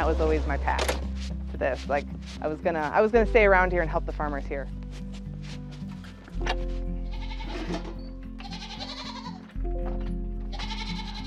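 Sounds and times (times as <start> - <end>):
speech: 0.1 - 4.8, 6.4 - 6.9, 7.7 - 8.0
goats bleating: 7.0 - 9.5, 10.4 - 11.2.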